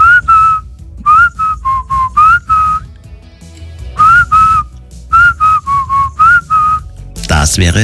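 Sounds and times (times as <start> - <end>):
whistled pop melody: 0.0 - 3.0, 3.9 - 7.0
low backing track with drums and bass: 0.0 - 7.8
speech: 7.5 - 7.8.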